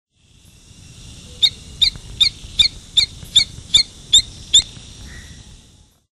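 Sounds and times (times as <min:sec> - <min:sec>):
Rhombophryne coronata frog calling: 0:01.1 - 0:05.5.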